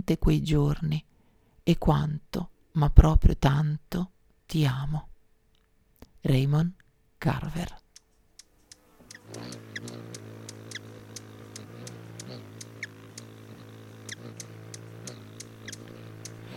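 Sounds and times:
speech: 0.1 - 5.1, 6.2 - 7.8, 9.3 - 9.6
buzzing hum of hummingbird wingbeats: 7.4 - 16.5.

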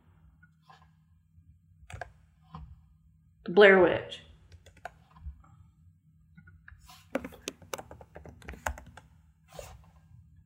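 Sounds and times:
speech: 3.4 - 4.2
typing on a computer keyboard: 4.5 - 5.0, 7.2 - 9.0.

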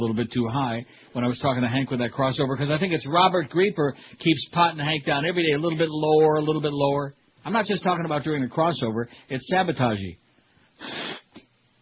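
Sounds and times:
speech: 0.0 - 10.2
person blowing nose: 10.8 - 11.5.

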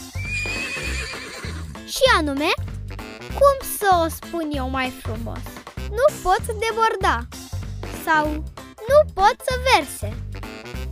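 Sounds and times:
horse neighing: 0.0 - 1.8
speech: 2.0 - 2.6, 3.3 - 7.4, 8.0 - 10.3.

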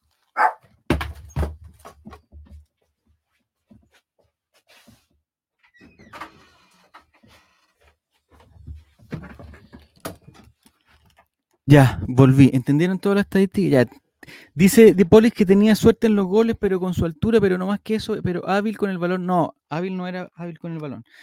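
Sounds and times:
dog barking at door: 0.3 - 0.6
shuffling and movement: 1.6 - 5.7, 6.5 - 11.3
speech: 11.7 - 14.0, 14.6 - 21.2.

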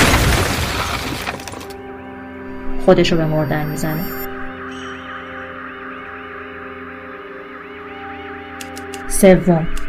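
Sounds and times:
window glass shattering from a gunshot: 0.0 - 1.8
speech: 2.9 - 4.2, 9.2 - 9.8.

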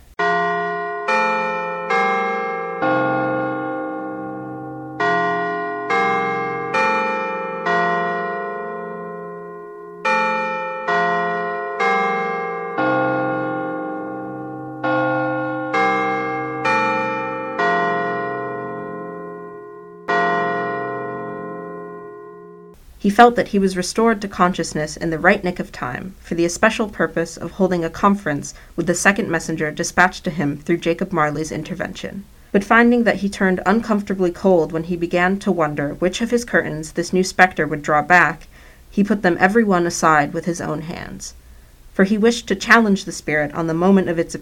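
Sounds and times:
church bells ringing in a melodic peal: 0.2 - 22.8
speech: 23.0 - 41.4, 42.0 - 44.4.

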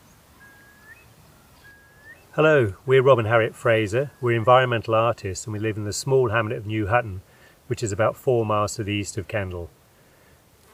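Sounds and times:
curlew alarm call: 0.0 - 2.8
outdoor hiss: 0.0 - 10.7
speech: 2.4 - 9.8.

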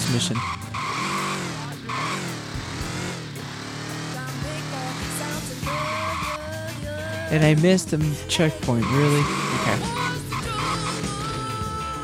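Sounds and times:
video game motorcycle tire squeals and skids: 0.0 - 4.0, 5.6 - 6.6, 8.8 - 11.7
video game motorcycle engine drone: 0.0 - 12.0
speech: 0.1 - 0.7, 7.3 - 10.0.

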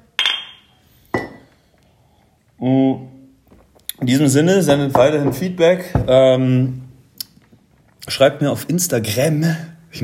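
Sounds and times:
glasses clinking together in a toast: 0.2 - 1.6
speech: 2.6 - 3.1, 4.0 - 6.8, 8.1 - 10.0.

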